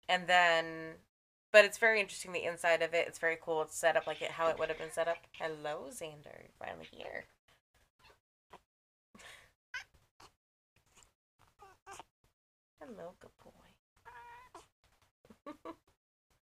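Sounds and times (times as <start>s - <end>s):
speech: 0.1s - 7.4s, 12.8s - 13.6s
cat meowing: 14.0s - 14.7s.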